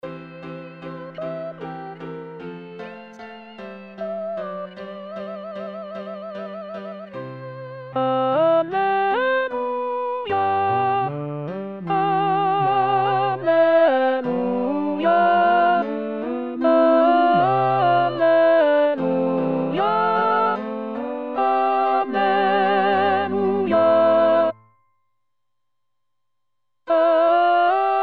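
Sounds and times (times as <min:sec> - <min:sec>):
alto voice singing a sacred choral work: 0:00.0 - 0:03.2, 0:03.9 - 0:24.6, 0:26.9 - 0:28.0.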